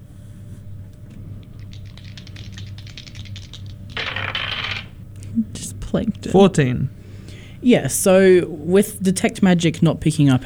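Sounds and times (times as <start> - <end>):
dice rolling for a nature check in a tabletop role-playing game: 1.4 - 5.0
speech: 5.4 - 7.0, 7.6 - 10.4.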